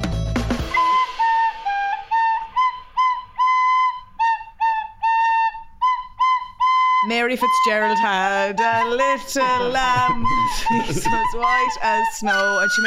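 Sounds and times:
shrill whistle playing a simple tune: 0:00.6 - 0:12.8
speech: 0:07.2 - 0:12.8
laughter: 0:08.7 - 0:12.1.

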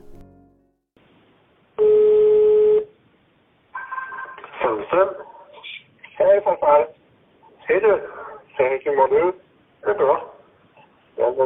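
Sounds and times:
buzzing telephone ring tone before a call: 0:01.8 - 0:02.8
speech: 0:04.8 - 0:05.3, 0:06.4 - 0:07.0, 0:07.7 - 0:10.3, 0:11.2 - 0:11.4.

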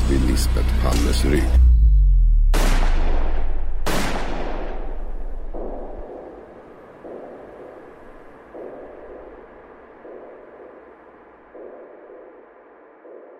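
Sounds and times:
low rumbling tail: 0:00.0 - 0:10.7
speech: 0:00.4 - 0:01.7
gunshots fired at close range: 0:02.5 - 0:10.8.

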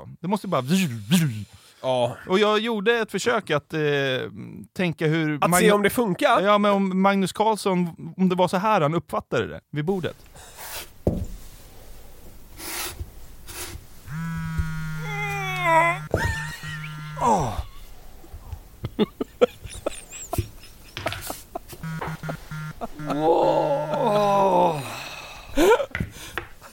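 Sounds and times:
speech: 0:00.2 - 0:10.5, 0:17.2 - 0:17.6, 0:18.9 - 0:19.2, 0:23.0 - 0:24.5
voice imitating a man sitting at a table groaning: 0:15.0 - 0:17.8, 0:22.8 - 0:25.9
laughter: 0:15.8 - 0:17.8, 0:18.8 - 0:26.0.

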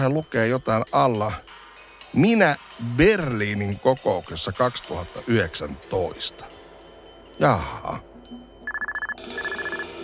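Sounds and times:
speech: 0:00.0 - 0:06.6, 0:07.4 - 0:08.4
telephone ringing with a rapid pulsing electronic trill: 0:08.4 - 0:10.0.

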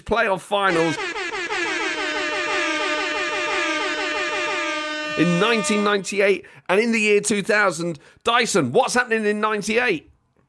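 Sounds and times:
speech: 0:00.0 - 0:01.2, 0:05.2 - 0:10.1
quadruple air horn blast: 0:00.7 - 0:06.1.

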